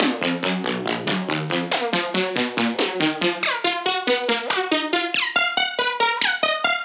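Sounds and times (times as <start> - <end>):
melodic riddim loop in D sharp: 0.0 - 6.8.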